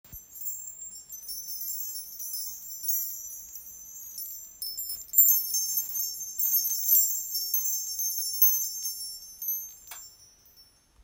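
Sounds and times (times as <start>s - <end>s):
wind chime chain: 0.1s - 11.0s.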